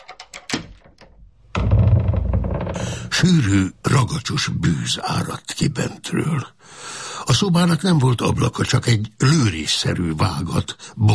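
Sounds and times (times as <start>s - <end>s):
sharp metallic clicks and clunks from a lock: 0.0s - 3.1s
heavy iron-bound oak door creaking open with low rumble: 0.3s - 3.3s
speech: 3.2s - 11.1s.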